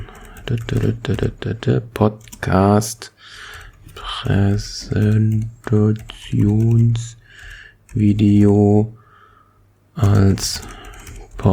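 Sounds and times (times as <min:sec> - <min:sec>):
typing on a computer keyboard: 0:00.0 - 0:01.5, 0:02.2 - 0:02.6, 0:03.5 - 0:08.1, 0:10.0 - 0:11.5
speech: 0:00.5 - 0:07.2, 0:07.9 - 0:09.0, 0:10.0 - 0:10.8, 0:11.4 - 0:11.5.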